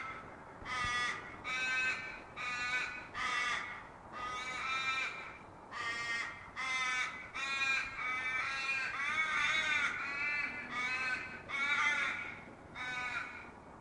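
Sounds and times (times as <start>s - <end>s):
raven giving harsh nasal caws: 0.0s - 13.6s.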